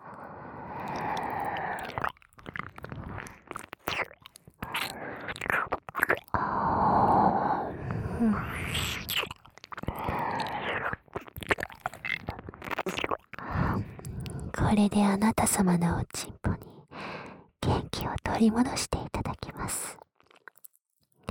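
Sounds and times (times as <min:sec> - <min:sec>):
breathy noise: 0:00.0 - 0:02.0, 0:06.4 - 0:08.5, 0:09.8 - 0:10.8, 0:13.4 - 0:14.6, 0:16.6 - 0:17.6
wet ear licking with smacks, slurps and tongue clicks: 0:00.8 - 0:06.4, 0:08.5 - 0:14.4
speech: 0:14.8 - 0:16.3, 0:18.4 - 0:18.9.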